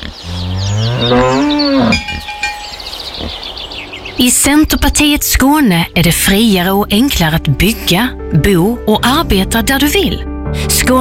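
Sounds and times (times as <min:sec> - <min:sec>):
cow mooing: 0:00.1 - 0:02.3
speech: 0:01.0 - 0:01.6, 0:04.2 - 0:10.9.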